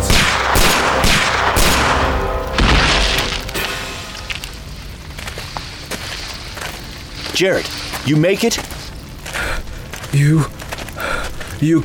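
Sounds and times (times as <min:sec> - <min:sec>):
shotgun blasts fired into trees and bushes beside a highway: 0:00.0 - 0:04.0
speech: 0:07.4 - 0:08.8, 0:10.1 - 0:10.6, 0:11.6 - 0:11.8.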